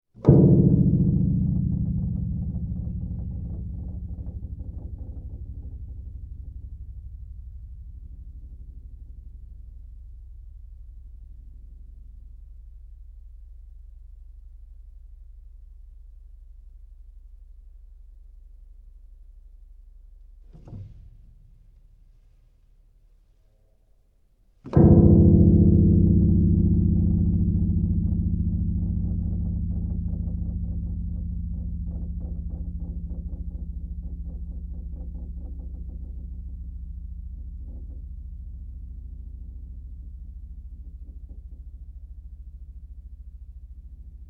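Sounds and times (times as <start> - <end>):
low piano note: 0.2 - 18.9, 24.6 - 44.2.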